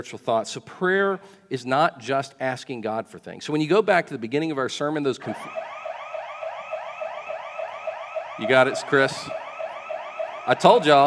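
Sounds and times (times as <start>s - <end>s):
speech: 0.0s - 5.7s, 8.4s - 9.4s, 10.4s - 11.0s
alarm going off inside a church: 5.3s - 11.0s.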